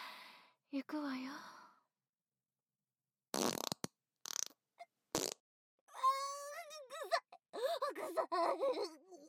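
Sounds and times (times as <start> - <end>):
speech: 0.7 - 1.6
short sputtering fart bursts: 3.3 - 5.4
strained moaning and whimpering voice: 5.9 - 9.2.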